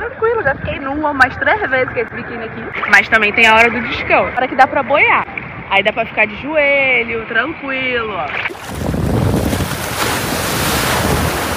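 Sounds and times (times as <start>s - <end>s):
gusty wind rumble over the microphone: 0.0s - 11.5s
speech: 0.1s - 9.6s
ocean surf washing onto a beach: 8.4s - 11.5s.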